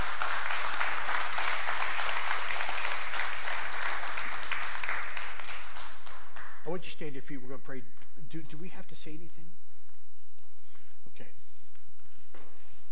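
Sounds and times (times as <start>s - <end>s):
crowd applauding with many hands clapping: 0.0s - 6.7s
speech: 6.8s - 9.6s.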